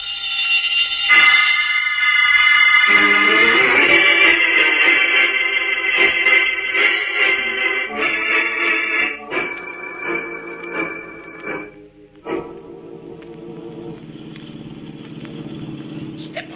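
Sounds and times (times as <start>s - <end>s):
burglar alarm ringing: 0.0s - 11.9s
old car engine roaring along at speed: 13.4s - 16.5s.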